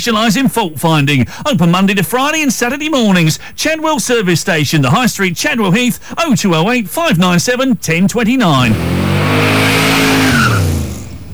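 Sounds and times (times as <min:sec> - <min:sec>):
speech: 0:00.0 - 0:09.8
loud car engine roaring: 0:08.4 - 0:11.3
tyres screeching in a long skid: 0:08.5 - 0:11.3.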